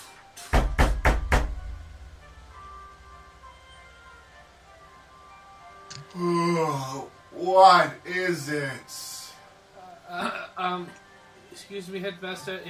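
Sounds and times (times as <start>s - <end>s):
heavy fist thumps on a door: 0.5s - 1.9s
speech: 6.1s - 9.1s, 10.1s - 11.0s, 11.6s - 12.6s.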